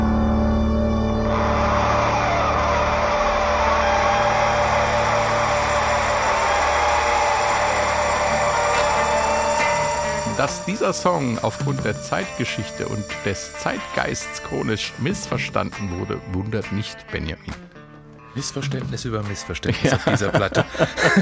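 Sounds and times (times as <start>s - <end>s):
loud steady engine roar at a rock song intro: 0.0s - 13.2s
speech: 10.7s - 17.7s, 18.4s - 21.2s
laughter: 19.6s - 21.2s.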